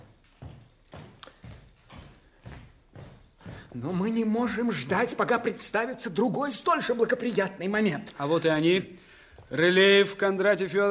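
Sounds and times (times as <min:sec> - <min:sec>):
heavy footsteps of two approaching men on a hard floor: 0:00.0 - 0:05.8
speech: 0:03.7 - 0:10.9.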